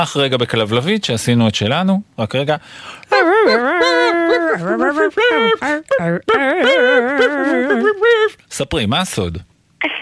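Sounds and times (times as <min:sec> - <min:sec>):
speech: 0:00.0 - 0:09.9
puppy whimpering and whining: 0:03.1 - 0:08.4.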